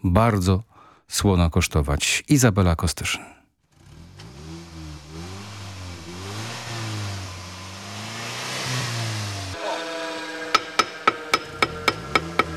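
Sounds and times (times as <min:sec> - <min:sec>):
speech: 0:00.0 - 0:03.4
car engine revving in a repair workshop: 0:03.6 - 0:12.5
metallic hammer strikes in a car repair workshop: 0:10.5 - 0:12.5.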